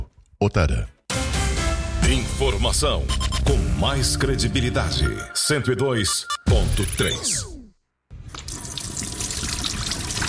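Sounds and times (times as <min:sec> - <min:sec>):
speech: 0:00.4 - 0:00.9, 0:02.1 - 0:07.5
water pouring from a faucet into a sink: 0:08.2 - 0:10.2.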